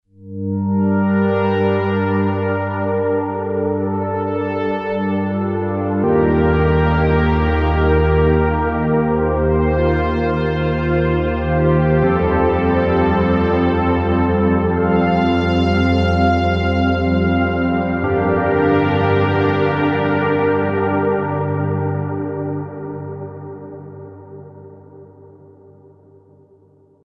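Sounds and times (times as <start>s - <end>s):
ethereal synthesizer pad: 0.4s - 27.0s.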